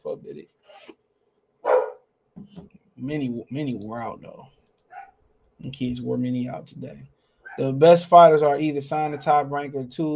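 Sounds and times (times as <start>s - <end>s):
dog barking: 1.6s - 2.0s, 4.9s - 5.2s, 7.4s - 7.6s
dog yips and grumbles: 1.6s - 2.0s, 4.9s - 5.2s
speech: 3.0s - 4.6s, 5.7s - 10.1s.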